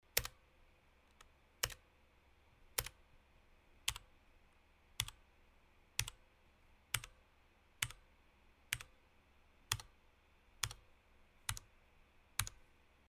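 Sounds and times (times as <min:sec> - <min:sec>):
weak keyboard typing: 0:00.1 - 0:00.4, 0:01.1 - 0:01.8, 0:02.7 - 0:03.0, 0:03.8 - 0:04.1, 0:05.0 - 0:05.2, 0:06.0 - 0:06.2, 0:06.9 - 0:07.2, 0:07.8 - 0:08.0, 0:08.7 - 0:08.9, 0:09.7 - 0:10.0, 0:10.6 - 0:10.8, 0:11.4 - 0:11.7, 0:12.4 - 0:12.6.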